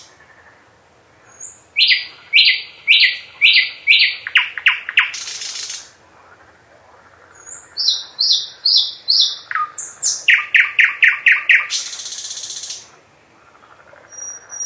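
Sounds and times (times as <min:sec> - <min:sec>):
nightingale singing whistled notes and rattling trill: 0:01.2 - 0:05.9, 0:07.3 - 0:12.9, 0:14.0 - 0:14.6.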